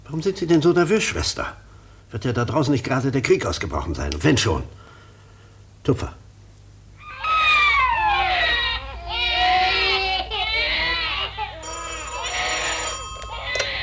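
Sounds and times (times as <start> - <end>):
speech: 0.1 - 4.8, 5.8 - 6.2
babies crying in a hospital nursery ward: 7.0 - 11.8, 12.6 - 13.8
telephone ringing: 11.6 - 13.8.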